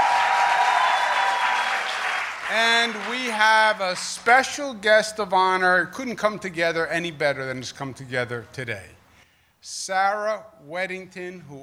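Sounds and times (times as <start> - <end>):
crowd applauding legislators after a vote passed: 0.0 - 4.6
speech: 2.5 - 9.0, 9.6 - 11.6.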